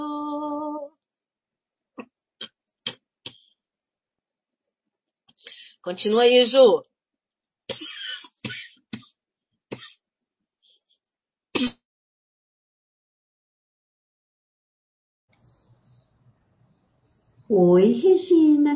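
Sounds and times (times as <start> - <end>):
speech: 5.8 - 6.9, 17.5 - 18.7
person coughing: 7.7 - 9.1, 11.6 - 11.8.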